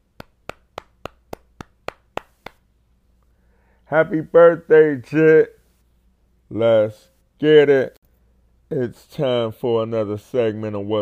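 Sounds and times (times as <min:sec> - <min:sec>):
single pair of hands clapping crisply: 0:00.2 - 0:02.6
speech: 0:03.9 - 0:05.6, 0:06.5 - 0:08.0, 0:08.7 - 0:11.0.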